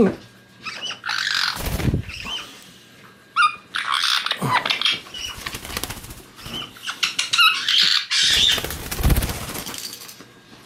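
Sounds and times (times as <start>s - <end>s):
caique chick squawking and chattering: 0.6s - 2.5s, 3.4s - 5.4s, 6.4s - 8.8s.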